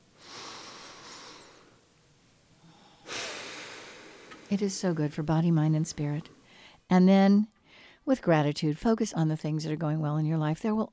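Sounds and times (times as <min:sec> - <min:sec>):
deep breath: 0:00.2 - 0:01.8, 0:02.6 - 0:04.5, 0:06.2 - 0:06.8, 0:07.6 - 0:08.0
speech: 0:04.5 - 0:10.9.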